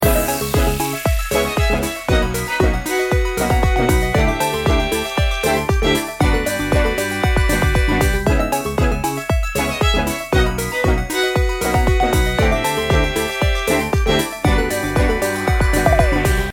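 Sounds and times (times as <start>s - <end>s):
victory music loop: 0.0s - 16.5s.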